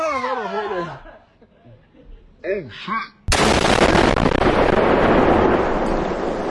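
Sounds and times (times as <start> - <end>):
laughter: 0.2 - 2.4
explosion: 3.3 - 6.4.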